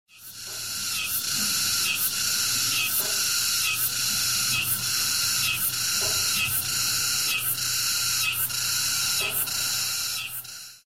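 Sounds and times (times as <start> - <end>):
cicadas in a forest: 0.1 - 10.8.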